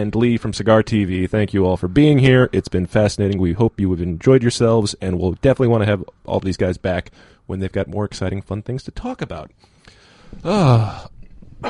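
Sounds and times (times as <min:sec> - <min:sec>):
speech: 0:00.0 - 0:11.6
raspy throat clearing: 0:10.4 - 0:11.6.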